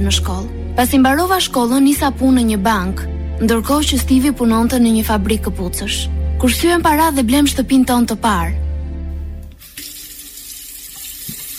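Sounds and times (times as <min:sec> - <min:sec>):
speech: 0:00.0 - 0:08.6
cold and hot water running from a tap: 0:09.5 - 0:11.5.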